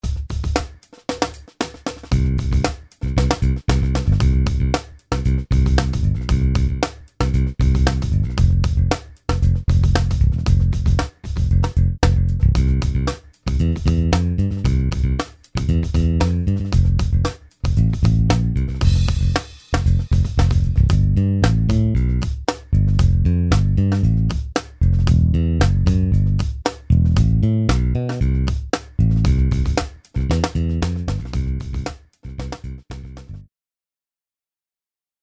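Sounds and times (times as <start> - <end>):
drum loop: 0.0 - 33.4
bass: 2.1 - 33.5.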